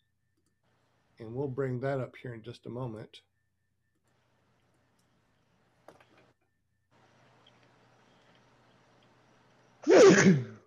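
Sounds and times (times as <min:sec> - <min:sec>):
speech: 0:01.2 - 0:03.3, 0:10.2 - 0:10.5
person sneezing: 0:09.8 - 0:10.6.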